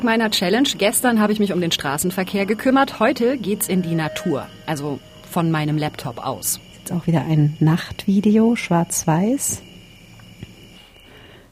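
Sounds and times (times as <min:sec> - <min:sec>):
speech: 0:00.0 - 0:09.7
high insect drone in nighttime jungle: 0:00.0 - 0:11.5.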